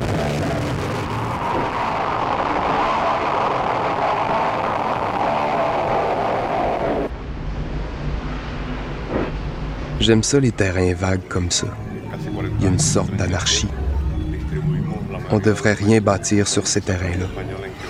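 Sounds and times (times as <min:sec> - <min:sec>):
traffic on a city street heading down toward the lower town: 0:00.0 - 0:17.8
speech: 0:10.0 - 0:11.9, 0:12.6 - 0:13.8, 0:15.3 - 0:17.8.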